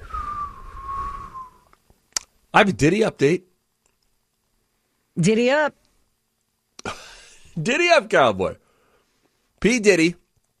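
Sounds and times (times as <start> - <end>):
person whistling a long note: 0.0 - 1.7
faint clicks: 1.6 - 2.4, 3.8 - 4.6, 10.3 - 10.5
speech: 2.6 - 3.5, 5.2 - 5.8, 7.6 - 8.6, 9.6 - 10.2.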